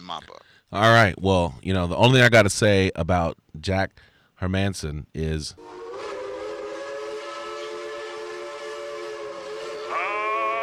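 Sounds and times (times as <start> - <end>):
speech: 0.1 - 6.2
steady tonal train whistle sound effect: 5.6 - 10.6.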